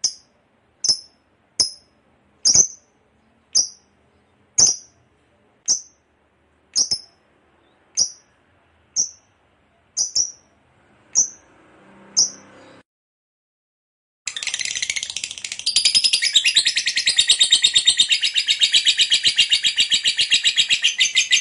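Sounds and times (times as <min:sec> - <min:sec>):
lovebird chirps and long harsh chatter: 0:00.0 - 0:01.8, 0:02.4 - 0:02.9, 0:03.5 - 0:03.9, 0:04.6 - 0:05.0, 0:05.7 - 0:06.0, 0:06.8 - 0:08.3, 0:09.0 - 0:09.2, 0:10.0 - 0:10.5, 0:11.2 - 0:11.4, 0:14.3 - 0:21.3.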